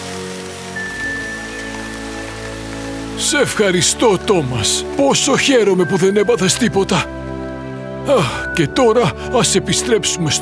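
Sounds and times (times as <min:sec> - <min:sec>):
rain falling: 0:00.0 - 0:05.7
speech: 0:03.2 - 0:07.3, 0:08.0 - 0:10.4.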